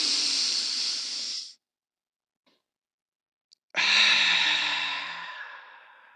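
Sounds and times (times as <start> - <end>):
deep breath: 0.0 - 1.6, 3.8 - 6.1.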